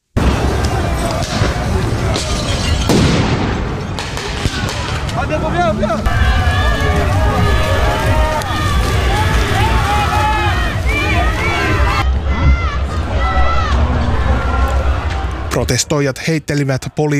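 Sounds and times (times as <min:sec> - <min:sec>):
protesters shouting in a street clash with police: 0:00.2 - 0:15.7
sharp booms: 0:02.1 - 0:05.0
speech: 0:15.6 - 0:17.1.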